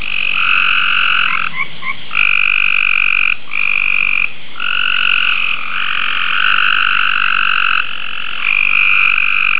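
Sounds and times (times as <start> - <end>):
gray treefrog: 0.0 - 9.5.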